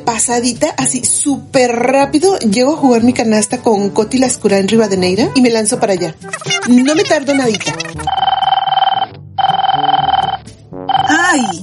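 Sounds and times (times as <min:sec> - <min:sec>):
speech: 0:00.1 - 0:08.1, 0:11.4 - 0:11.6
laughter: 0:06.2 - 0:08.1
mobile phone ringtone: 0:07.4 - 0:11.6.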